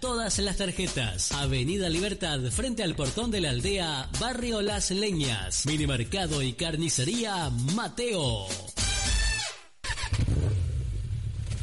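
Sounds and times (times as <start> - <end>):
speech: 0.0 - 8.7
motorcycle engine revving in a radio advert for a motorcycle repair shop: 9.9 - 11.6.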